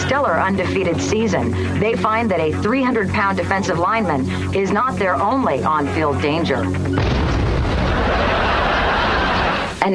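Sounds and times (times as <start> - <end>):
laughter: 0.0 - 1.3, 5.6 - 6.7, 7.6 - 9.8
speech: 0.1 - 7.4
tire exploding: 7.0 - 8.3.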